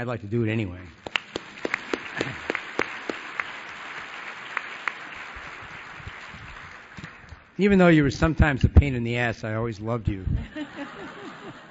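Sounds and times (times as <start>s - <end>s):
speech: 0.0s - 1.0s, 7.6s - 10.7s
crowd applauding: 1.0s - 7.6s
laughter: 10.4s - 11.6s.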